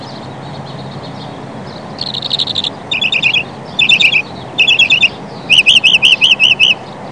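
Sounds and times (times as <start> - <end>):
northern mockingbird song: 0.0 - 7.1.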